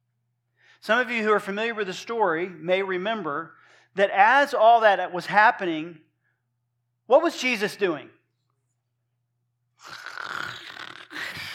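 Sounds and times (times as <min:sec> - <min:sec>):
speech: 0:00.8 - 0:06.1, 0:07.1 - 0:08.2
person imitating a raspy snore: 0:09.8 - 0:11.5.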